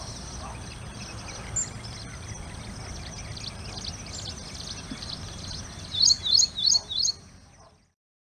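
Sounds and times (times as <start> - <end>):
ashy prinia soft chirping: 0.0 - 8.0.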